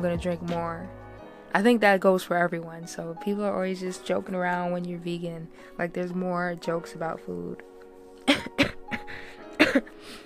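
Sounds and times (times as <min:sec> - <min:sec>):
speech: 0:00.0 - 0:08.6
harsh cough: 0:08.2 - 0:09.9.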